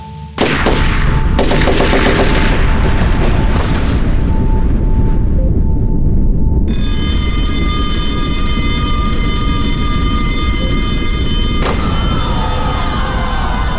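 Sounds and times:
assault rifle gunfire: 0.4 - 2.6
heavy rumbling roar: 0.4 - 13.7
steady high tone: 5.2 - 13.7
school alarm ringing: 6.7 - 13.7.

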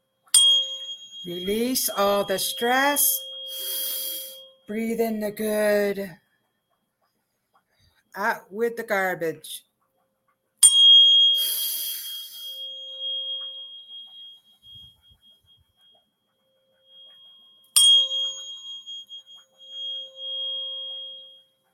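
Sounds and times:
metallic wind chimes ringing: 0.3 - 6.0, 10.6 - 16.0, 16.6 - 21.7
speech: 1.2 - 3.8, 4.7 - 6.2, 8.2 - 9.7.

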